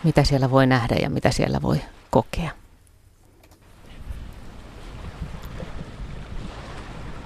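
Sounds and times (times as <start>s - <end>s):
speech: 0.0s - 2.6s
boat ploughing through heavy sea swell on the Gulf of Finland: 3.2s - 7.2s
gusting wind buffeting the microphone: 3.6s - 7.2s.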